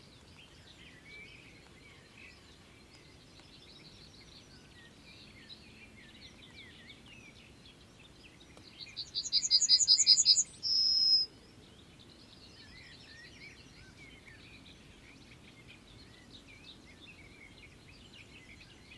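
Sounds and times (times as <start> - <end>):
birds chirping: 0.0 - 18.9
bird giving a loud rapid high trill: 9.1 - 11.3.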